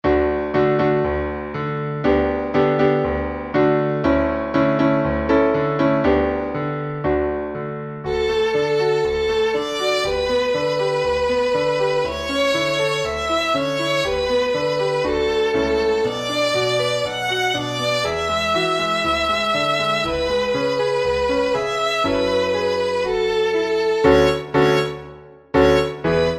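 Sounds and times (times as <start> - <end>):
piano in D major: 0.0 - 26.3
violin in D major: 8.0 - 26.3.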